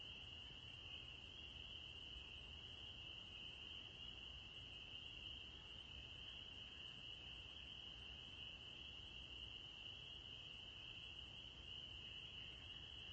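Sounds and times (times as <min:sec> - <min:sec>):
spring peepers chorus of high piping calls in the evening: 0:00.0 - 0:13.1.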